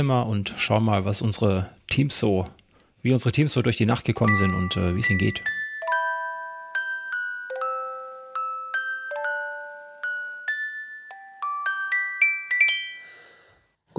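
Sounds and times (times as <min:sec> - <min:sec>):
speech: 0:00.0 - 0:05.6
alarm clock ringing with a bright electronic chime-like melody: 0:04.2 - 0:13.2.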